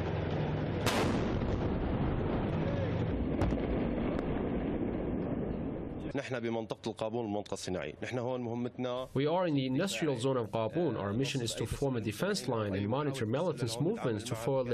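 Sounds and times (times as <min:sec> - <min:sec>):
heavy gunfire from army tanks and artillery in an industrial zone: 0:00.7 - 0:06.0
sharp artillery blasts: 0:00.8 - 0:06.1
speech: 0:06.1 - 0:14.7.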